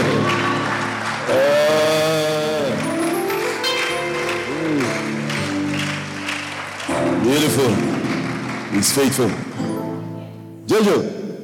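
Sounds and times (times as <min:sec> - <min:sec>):
congregation clapping: 0:00.0 - 0:10.0
sustained organ-like keyboard chords: 0:00.0 - 0:11.4
speech: 0:08.8 - 0:09.6, 0:10.7 - 0:11.2.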